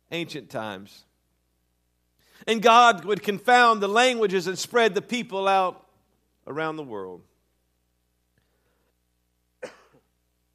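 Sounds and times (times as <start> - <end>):
speech: 0.1 - 1.1, 2.4 - 5.8, 6.4 - 7.3
person coughing: 9.6 - 10.1.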